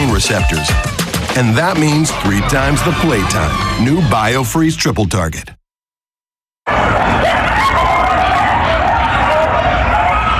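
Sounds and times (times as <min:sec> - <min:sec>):
chorus of coyotes howling and yipping: 0:00.0 - 0:04.2, 0:06.7 - 0:10.3
speech: 0:00.2 - 0:05.6.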